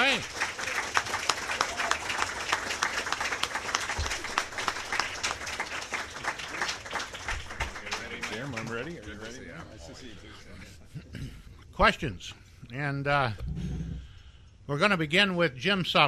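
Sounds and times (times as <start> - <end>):
audience applauding: 0.0 - 9.4
speech: 11.8 - 13.4, 14.7 - 16.0.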